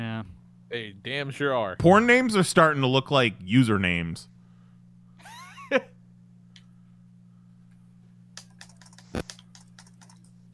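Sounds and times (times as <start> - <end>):
steady low hum: 0.0 - 10.5
speech: 0.7 - 4.3, 5.7 - 5.9
keyboard typing clicks: 8.4 - 10.3.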